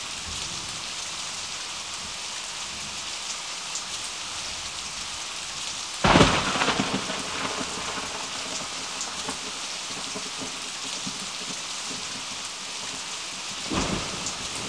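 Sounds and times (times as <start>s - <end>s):
heavy rain: 0.0s - 14.6s
thunder: 6.0s - 13.0s, 13.6s - 14.6s.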